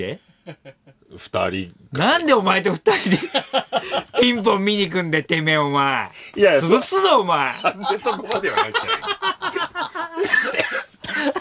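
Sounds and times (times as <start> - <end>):
speech: 0.0 - 11.3
laughter: 2.9 - 4.5, 7.5 - 11.3
cough: 10.2 - 11.3.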